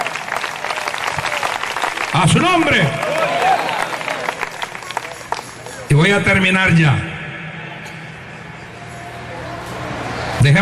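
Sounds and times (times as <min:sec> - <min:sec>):
congregation applauding: 0:00.0 - 0:05.9
speech: 0:02.2 - 0:03.4, 0:05.9 - 0:07.1, 0:10.4 - 0:10.6.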